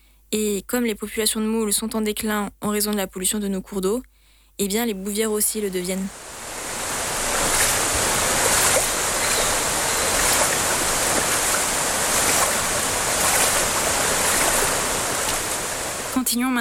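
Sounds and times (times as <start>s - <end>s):
speech: 0.3s - 6.3s, 16.3s - 16.5s
flowing river water: 5.7s - 16.3s.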